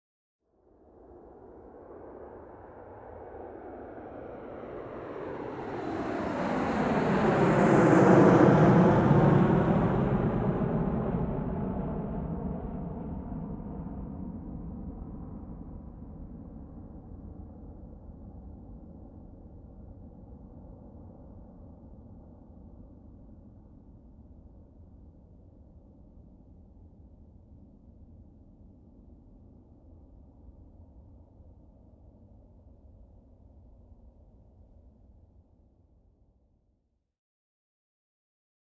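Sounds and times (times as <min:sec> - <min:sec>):
aircraft flying over whirring: 0:01.0 - 0:15.8.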